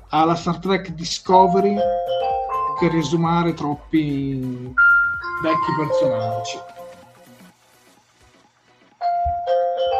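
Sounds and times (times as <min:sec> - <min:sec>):
speech: 0:00.1 - 0:04.8, 0:05.4 - 0:06.7
telephone ringing with an electronic melodic ringtone: 0:01.4 - 0:03.4, 0:04.8 - 0:07.2, 0:09.0 - 0:09.9.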